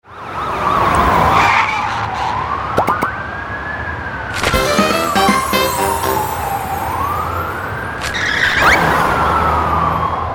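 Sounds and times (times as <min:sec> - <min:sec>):
police car siren: 0:00.1 - 0:10.3.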